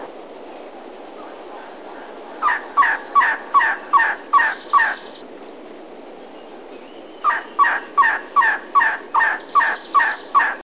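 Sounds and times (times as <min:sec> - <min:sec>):
Elegant Trogon singing: 0:02.4 - 0:05.3, 0:06.2 - 0:10.6.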